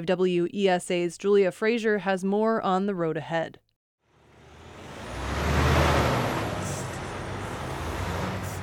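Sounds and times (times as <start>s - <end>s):
speech: 0.0s - 3.6s
large semi truck rumbling past on a road: 4.1s - 8.6s.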